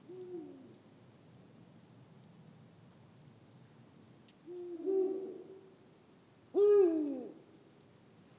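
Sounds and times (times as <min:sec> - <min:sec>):
steady background hiss: 0:00.0 - 0:08.3
Eurasian eagle-owl hooting: 0:04.5 - 0:05.6, 0:06.6 - 0:07.4.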